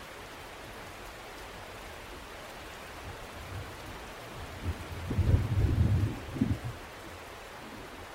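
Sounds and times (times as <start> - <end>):
steady hiss of falling rain: 0.0 - 8.1
low rolling rumble of thunder during rainstorm: 4.4 - 6.8.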